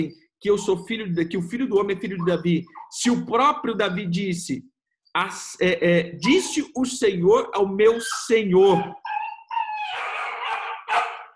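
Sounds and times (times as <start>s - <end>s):
speech: 0.0s - 9.1s
dog barking and howling: 2.0s - 4.1s, 7.9s - 11.3s.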